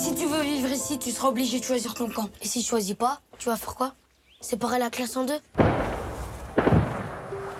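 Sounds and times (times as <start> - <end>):
speech: 0.1 - 5.8
heavy gunshots with rumbling echo in a film excerpt: 5.6 - 7.3.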